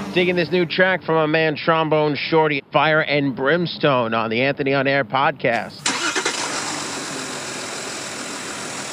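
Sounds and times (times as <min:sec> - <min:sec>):
speech: 0:00.2 - 0:05.9
Porsche Cayenne SUV engine idling: 0:05.9 - 0:08.8.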